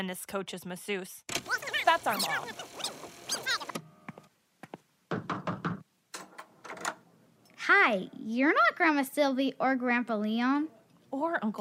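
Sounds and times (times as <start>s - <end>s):
speech: 0.0s - 3.6s, 7.7s - 11.5s
knocking on a wooden door: 5.1s - 5.8s.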